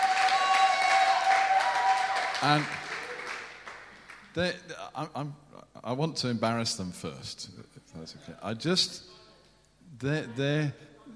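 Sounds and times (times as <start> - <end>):
audience applause: 0.0 - 4.3
speech: 2.4 - 2.8, 4.4 - 9.2, 10.0 - 10.9.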